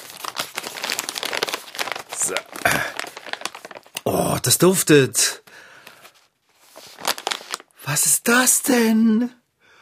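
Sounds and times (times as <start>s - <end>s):
plastic snack bag of fruit gummies being torn open: 0.0s - 4.1s, 7.0s - 7.7s
speech: 2.3s - 2.9s, 4.1s - 5.4s, 8.0s - 9.4s.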